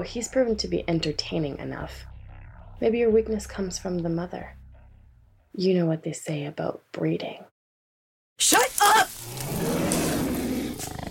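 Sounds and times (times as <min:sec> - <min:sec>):
speech: 0:00.0 - 0:02.1, 0:02.8 - 0:04.6, 0:05.6 - 0:07.5, 0:08.4 - 0:09.4
large wolf snarling with a rough throaty growl: 0:09.3 - 0:11.0.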